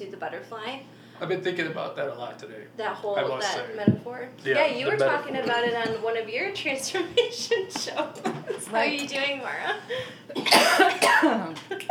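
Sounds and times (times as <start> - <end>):
speech: 0.0 - 11.8
person coughing harshly: 10.3 - 11.5.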